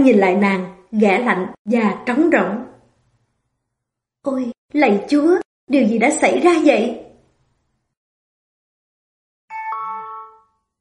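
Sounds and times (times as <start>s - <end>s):
speech: 0.0s - 2.7s, 4.2s - 7.0s
two-tone doorbell chime at a front door: 9.5s - 10.7s.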